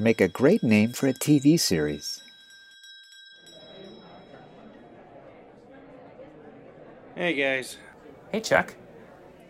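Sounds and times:
speech: 0.0s - 2.2s, 7.2s - 8.8s
school bell ringing: 0.0s - 5.4s
crowd of voices chattering in a hallway: 3.5s - 9.4s.

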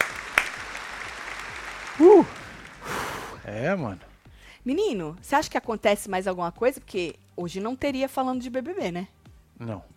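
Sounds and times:
hands clapping: 0.0s - 3.2s
speech: 2.0s - 2.4s, 3.5s - 9.9s.

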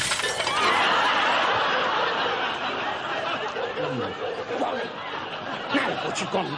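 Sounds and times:
falling shards of glass tinkling: 0.0s - 0.8s
hotel window smashed by a thrown stone: 0.0s - 1.0s
faint laughter: 0.4s - 6.5s
speech: 6.2s - 6.5s.

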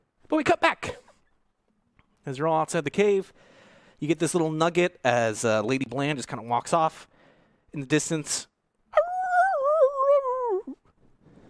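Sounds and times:
speech: 0.3s - 1.0s, 2.3s - 7.1s, 7.7s - 8.5s
werewolf screaming in a long howl: 9.0s - 10.8s.

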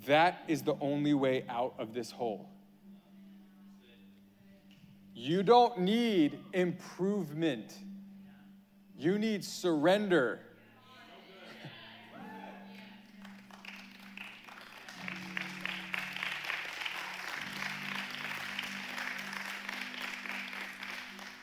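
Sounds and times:
speech: 0.0s - 2.6s, 5.2s - 7.9s, 9.0s - 10.5s
audience applause: 13.0s - 21.4s.

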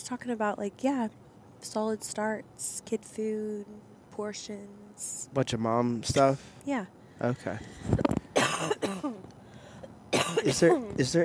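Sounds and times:
speech: 0.0s - 8.0s, 8.6s - 9.3s, 10.3s - 11.2s
person coughing harshly: 6.2s - 6.4s, 8.4s - 9.2s, 10.1s - 10.9s
short raspy throat clearing: 10.2s - 10.9s.

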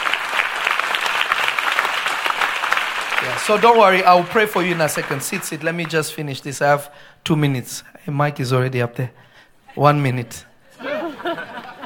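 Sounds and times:
church congregation clapping hands in praise: 0.0s - 6.5s
speech: 3.3s - 10.5s
laughter: 10.7s - 11.8s.

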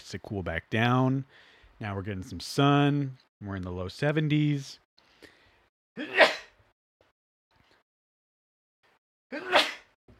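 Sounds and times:
speech: 0.1s - 4.8s, 6.0s - 6.2s
person sneezing: 6.0s - 6.6s, 9.3s - 10.0s.

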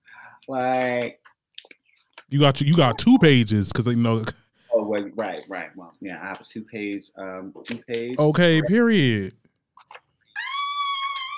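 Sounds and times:
speech: 0.5s - 1.2s, 2.3s - 9.5s
dog whining: 10.3s - 11.3s.

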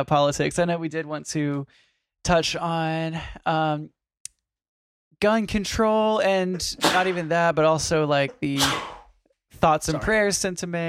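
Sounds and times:
speech: 0.0s - 4.0s, 5.2s - 9.0s, 9.6s - 10.8s
person sneezing: 6.8s - 7.3s, 8.4s - 9.1s.

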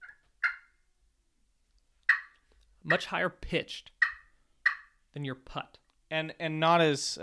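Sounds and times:
turkey clucks imitated with a call: 0.0s - 0.8s, 2.0s - 3.1s, 3.9s - 5.0s
speech: 2.8s - 4.0s, 5.2s - 7.2s.

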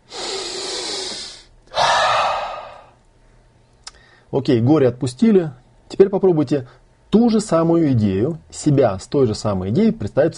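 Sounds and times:
deep breath in and out during a guided relaxation exercise: 0.0s - 3.0s
speech: 4.3s - 10.3s.

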